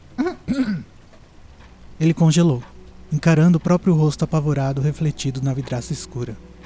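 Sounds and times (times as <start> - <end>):
faint hiss: 0.0 - 6.6
soft throat clearing: 0.2 - 0.9
speech: 0.5 - 0.9, 2.0 - 6.5.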